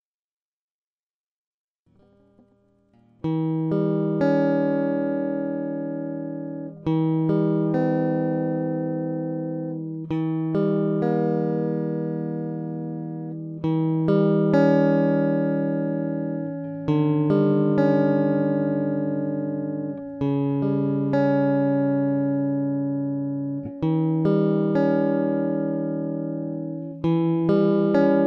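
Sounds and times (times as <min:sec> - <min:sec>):
guitar chords: 0:01.9 - 0:28.2.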